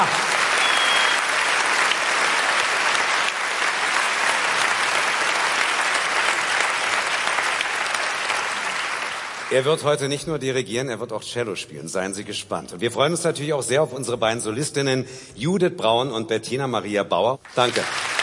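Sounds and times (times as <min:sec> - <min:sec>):
large audience applauding in a theatre: 0:00.0 - 0:09.6, 0:17.5 - 0:18.2
speech: 0:09.5 - 0:18.1.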